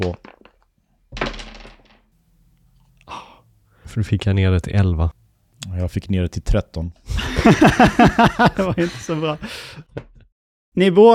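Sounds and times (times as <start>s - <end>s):
speech: 0.0s - 0.3s, 4.0s - 10.1s, 10.8s - 11.1s
two dice tumbling across a hard surface: 0.0s - 2.1s
laughter: 7.1s - 9.8s.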